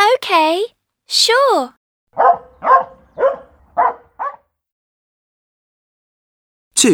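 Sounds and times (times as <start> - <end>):
speech: 0.2 - 2.8
dog barking: 2.2 - 4.4.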